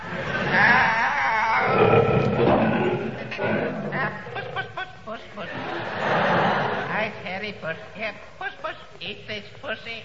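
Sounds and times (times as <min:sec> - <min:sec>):
lion roaring: 0:00.0 - 0:04.6
laughter: 0:03.2 - 0:07.2.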